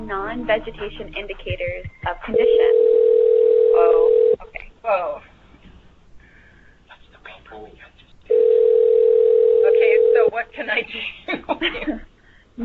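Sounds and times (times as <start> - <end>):
speech: 0.1 - 3.0, 3.8 - 5.3, 10.3 - 12.6
telephone dial tone on the call line: 2.6 - 4.4, 8.3 - 10.3.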